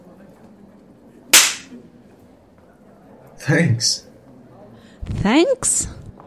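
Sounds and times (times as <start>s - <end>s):
slap with a fake beard: 1.4s - 1.7s
speech: 3.4s - 4.1s, 5.2s - 6.0s.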